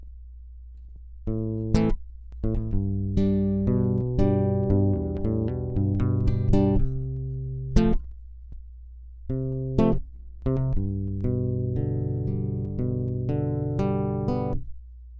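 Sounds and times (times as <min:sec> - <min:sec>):
guitar basic strumming Am G F G chords: 0:01.3 - 0:08.0, 0:09.3 - 0:14.6.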